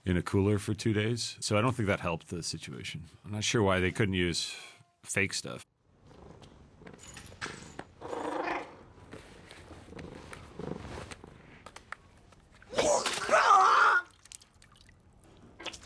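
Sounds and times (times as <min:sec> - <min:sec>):
speech: 0:00.0 - 0:05.7
splashing: 0:12.6 - 0:15.8
person retching and vomiting: 0:12.7 - 0:14.2.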